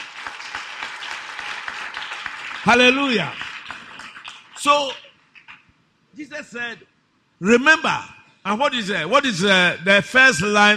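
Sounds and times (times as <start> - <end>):
church congregation clapping rhythmically: 0.0 - 5.7
speech: 2.6 - 3.4, 4.6 - 5.0, 6.2 - 10.7.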